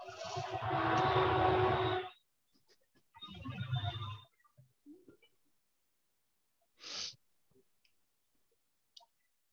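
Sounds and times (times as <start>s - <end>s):
train passing with rumbling roar and tonal whine: 0.0s - 2.2s.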